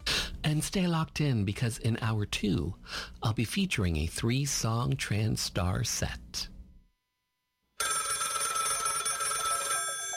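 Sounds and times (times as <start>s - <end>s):
speech: 0.5s - 6.5s
telephone bell ringing: 7.8s - 10.1s.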